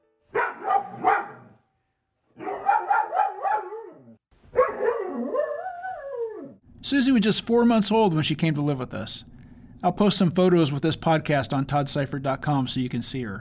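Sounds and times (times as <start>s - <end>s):
shelter rescue dog barking: 0.3s - 1.6s, 2.4s - 6.4s
shelter rescue dog yowling and howling: 2.4s - 6.6s
speech: 6.8s - 13.3s.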